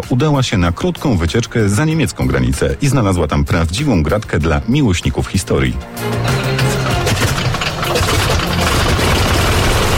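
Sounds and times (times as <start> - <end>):
speech: 0.0 - 6.6
vintage aircraft engine running: 0.6 - 9.9.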